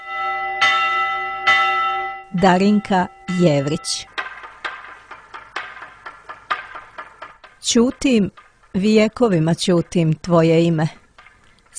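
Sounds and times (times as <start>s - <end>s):
church bells ringing: 0.0s - 5.8s
speech: 2.3s - 4.2s, 7.7s - 11.0s.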